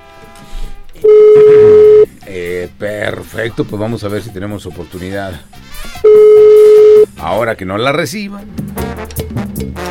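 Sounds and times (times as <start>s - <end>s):
speech: 0.2s - 1.7s, 2.3s - 6.1s, 7.2s - 8.6s
telephone line ringing tone as a call goes through: 1.0s - 2.1s, 6.0s - 7.1s.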